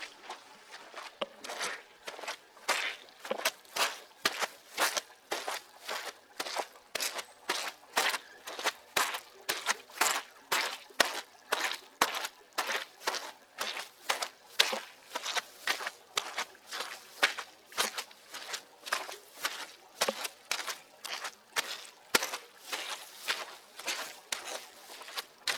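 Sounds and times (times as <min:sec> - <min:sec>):
footstep in mud: 0:00.0 - 0:25.5.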